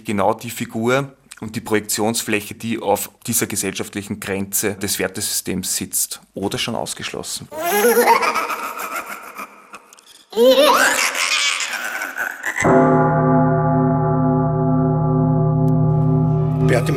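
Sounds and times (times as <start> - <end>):
speech: 0.0 - 8.6, 10.4 - 11.2, 16.8 - 16.9
giggling laughter: 7.6 - 12.7
church bell striking with a deep humming tone: 12.7 - 16.9.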